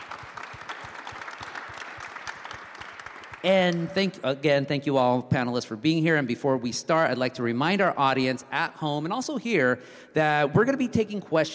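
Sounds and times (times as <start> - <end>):
audience at a panel event applauding: 0.0 - 3.8
speech: 3.4 - 11.5.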